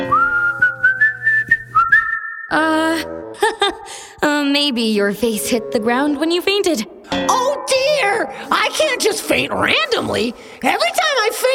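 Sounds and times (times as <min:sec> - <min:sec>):
person whistling a tune: 0:00.0 - 0:02.5
speech: 0:02.5 - 0:11.5.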